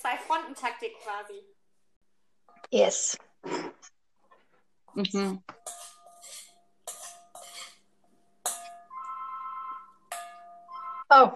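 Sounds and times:
speech: 0.0s - 1.6s, 2.6s - 4.0s, 4.9s - 5.9s, 11.1s - 11.3s
phone ringtone with bright chiming notes: 8.8s - 11.1s.

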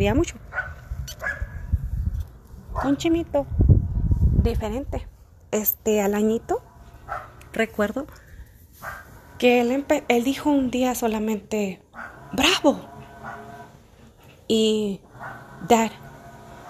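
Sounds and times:
speech: 0.0s - 0.7s, 2.8s - 3.7s, 4.4s - 8.2s, 8.8s - 12.9s, 14.5s - 16.0s
household dogs barking and whimpering: 0.5s - 1.6s, 7.0s - 7.4s, 12.0s - 12.4s, 13.1s - 13.7s, 15.1s - 15.6s
dog high sharp yelp: 0.5s - 1.7s, 7.1s - 7.4s, 12.0s - 12.4s, 13.2s - 13.7s, 15.2s - 15.6s.

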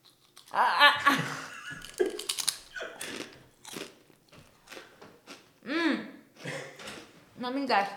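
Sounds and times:
chewing a crisp truffle and sea salt kettle potato chip: 0.0s - 0.6s, 1.8s - 5.4s
speech: 0.5s - 1.2s, 7.5s - 7.9s.

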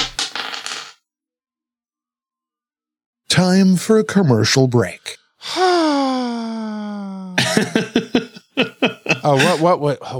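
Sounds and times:
dice rolling: 0.0s - 1.0s
speech: 3.4s - 6.4s, 7.6s - 10.1s
laughter: 7.3s - 9.8s.

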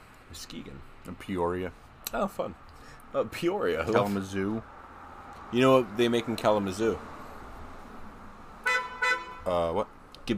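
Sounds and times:
speech: 0.3s - 4.8s, 5.5s - 7.1s, 9.5s - 10.3s
car horn honk: 8.6s - 9.7s.

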